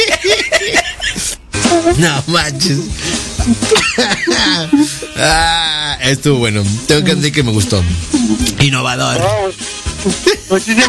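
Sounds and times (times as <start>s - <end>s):
laugh-like voiced sounds: 1.1s - 6.0s, 6.7s - 8.7s
speech: 1.9s - 10.8s
person coughing: 3.0s - 5.6s.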